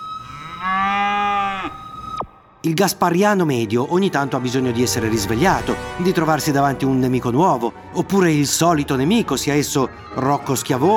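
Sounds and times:
cow mooing: 0.0s - 1.9s
speech: 2.6s - 10.9s.

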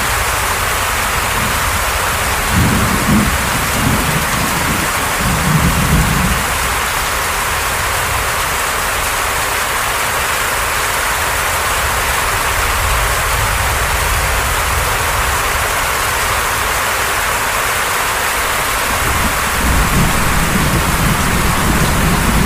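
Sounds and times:
steady dense tropical rain hissing: 0.0s - 22.4s
low thunder rumbling: 0.9s - 6.8s, 18.4s - 22.4s.

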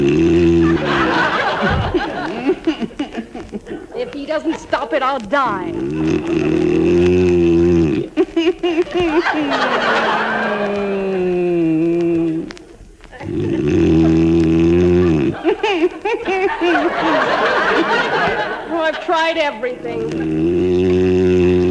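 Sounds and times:
man snoring loudly: 0.0s - 1.8s, 5.7s - 8.1s, 13.2s - 15.4s, 20.0s - 21.7s
laughter: 0.2s - 6.8s, 8.2s - 12.5s, 13.1s - 20.4s
speech: 4.3s - 7.4s, 8.6s - 10.8s, 18.9s - 21.1s.

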